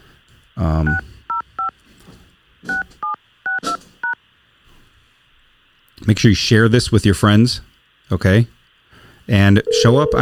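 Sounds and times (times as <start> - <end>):
speech: 0.6 - 1.1, 6.1 - 8.6, 9.3 - 10.2
touch-tone phone keypad beeps: 9.7 - 10.2.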